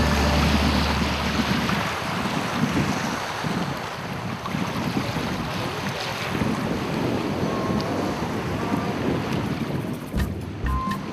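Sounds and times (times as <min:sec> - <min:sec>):
small motorboat engine droning on open water at a small fishing port: 0:00.0 - 0:03.2, 0:06.6 - 0:11.1
waves splashing: 0:00.0 - 0:11.1
wind buffeting the microphone: 0:00.0 - 0:11.1.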